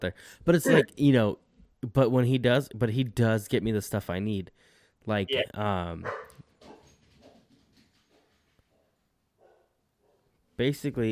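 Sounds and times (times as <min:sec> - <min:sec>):
speech: 0:00.0 - 0:06.2, 0:10.6 - 0:11.1
dog barking: 0:06.0 - 0:07.4, 0:08.8 - 0:10.3.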